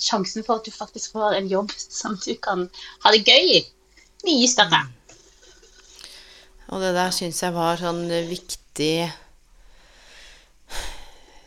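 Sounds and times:
speech: 0.0s - 5.0s, 6.7s - 9.2s
deep audible breath of someone catching their breath: 5.9s - 6.6s, 9.3s - 11.4s.

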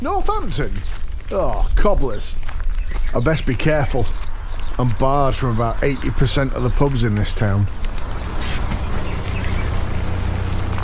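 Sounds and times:
speech: 0.0s - 2.5s, 3.1s - 7.8s
bus engine rumble at a bus station in Northampton: 4.8s - 10.8s
bus air brakes hissing: 8.2s - 10.7s.

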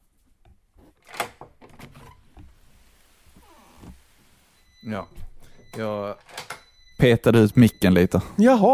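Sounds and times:
speech: 4.9s - 6.4s, 7.0s - 8.7s
door latch clicking: 6.2s - 6.6s.

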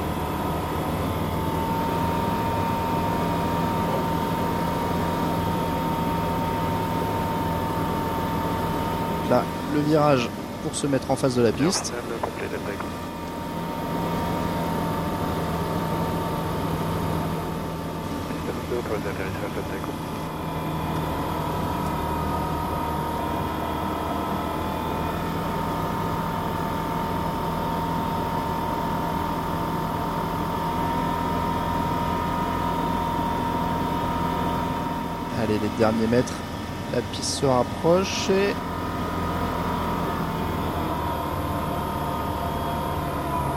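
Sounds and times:
light aircraft engine droning on final approach to a runway: 0.0s - 43.5s
speech: 9.3s - 13.1s, 18.9s - 20.2s, 35.8s - 36.4s, 37.0s - 38.7s.

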